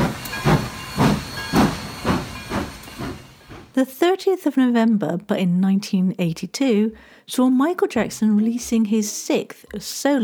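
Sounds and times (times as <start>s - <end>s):
steam locomotive chuffing with bursts of hissing steam: 0.0s - 3.8s
speech: 3.8s - 10.2s.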